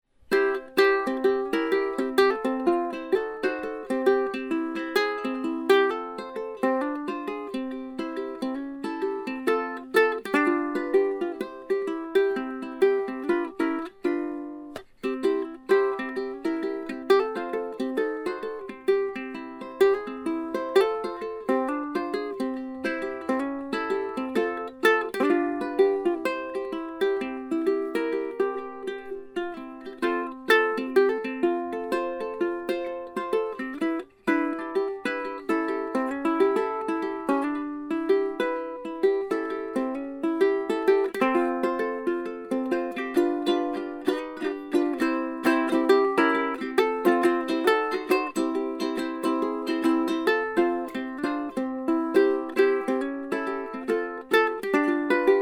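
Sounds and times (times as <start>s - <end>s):
Beltona Concert High Country Cone resonator guitar: 0.3s - 55.4s.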